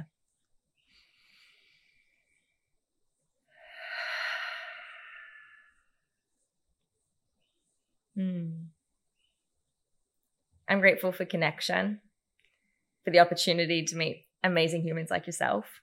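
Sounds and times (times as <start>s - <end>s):
slow deep breaths during a calming moment: 0.8s - 2.8s, 3.4s - 6.1s
speech: 10.7s - 12.1s, 13.0s - 15.8s.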